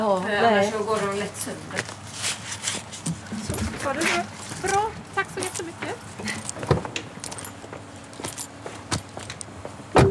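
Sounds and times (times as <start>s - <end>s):
speech: 0.0s - 2.0s
rustling handling noises: 0.1s - 9.4s
metallic clinks while loading a car trunk: 5.4s - 8.6s.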